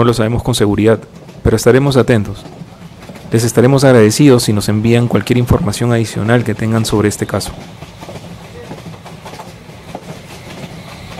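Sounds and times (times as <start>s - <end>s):
speech: 0.0s - 2.6s, 3.3s - 8.2s
passing train wheels clickety-clack on rails: 0.0s - 11.1s.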